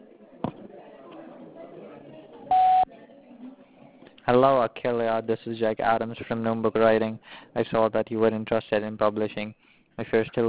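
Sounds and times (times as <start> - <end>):
sharp voicemail answering-machine beep: 2.5 - 2.9
speech: 4.3 - 10.4.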